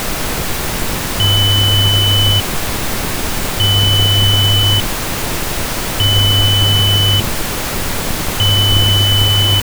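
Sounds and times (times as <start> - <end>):
noise: 0.0 - 9.6
tones: 1.2 - 2.4, 3.6 - 4.8, 6.0 - 7.2, 8.4 - 9.6.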